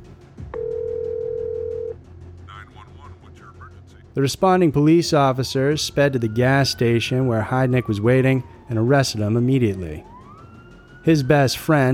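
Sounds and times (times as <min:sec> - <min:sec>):
telephone dial tone: 0:00.6 - 0:02.0
speech: 0:04.2 - 0:10.1, 0:11.0 - 0:11.9.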